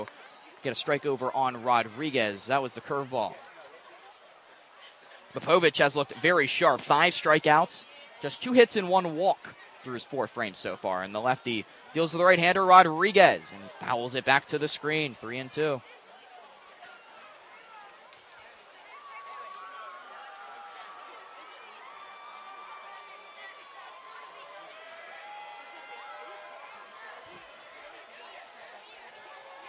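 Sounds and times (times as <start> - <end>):
speech: 0.0 - 3.4, 5.3 - 15.9
baseball stadium crowd cheering: 0.0 - 29.6
overlapping crowd chatter: 0.0 - 29.6
shouts and whoops from a baseball crowd: 18.9 - 27.5.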